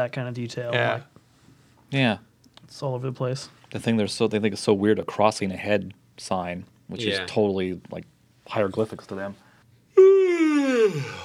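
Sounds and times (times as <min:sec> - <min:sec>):
speech: 0:00.0 - 0:01.2, 0:01.9 - 0:09.4
long drawn-out human yawn: 0:09.9 - 0:11.2.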